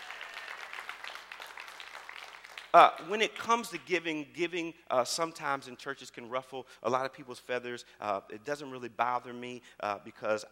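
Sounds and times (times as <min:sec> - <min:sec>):
congregation clapping in a church: 0:00.0 - 0:03.1
speech: 0:02.8 - 0:10.5.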